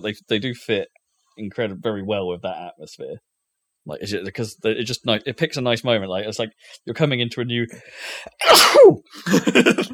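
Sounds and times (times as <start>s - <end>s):
speech: 0.0s - 9.9s
loud sneeze: 8.4s - 9.0s.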